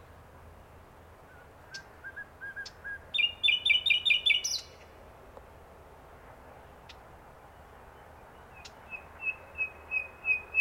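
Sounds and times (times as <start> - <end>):
common nightingale song: 1.0 - 5.0, 6.6 - 10.6.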